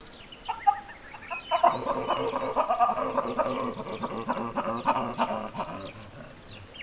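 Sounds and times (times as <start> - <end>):
large group of Papio cynocephalus ursinus baboons: 0.5 - 6.8
Papio cynocephalus ursinus female post-copulatory pant calls: 1.3 - 6.4.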